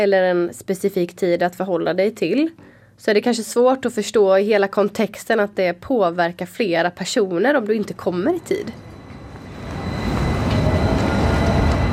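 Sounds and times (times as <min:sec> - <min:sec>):
speech: 0:00.0 - 0:08.9
tram rolling along its rails with low rumble and high whine: 0:07.8 - 0:11.9.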